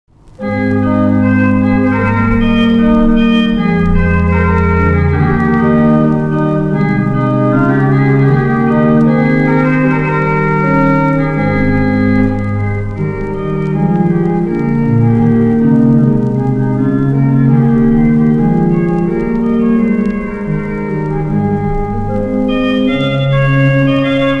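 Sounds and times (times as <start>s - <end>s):
organ playing with cornet stop: 0.2s - 24.3s.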